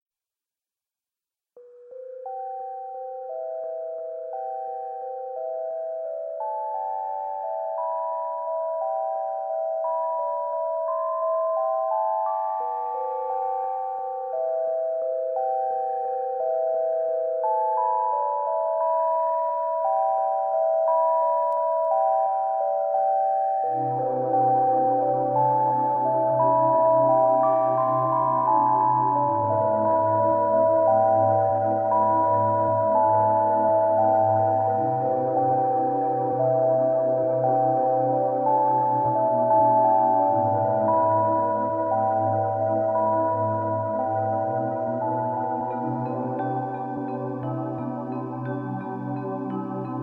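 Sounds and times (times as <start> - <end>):
432 Hz music: 1.6 - 50.0.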